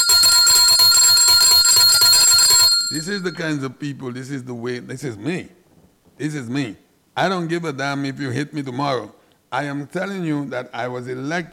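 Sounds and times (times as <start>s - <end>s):
bell ringing: 0.0s - 3.4s
speech: 3.0s - 5.6s, 6.2s - 11.5s.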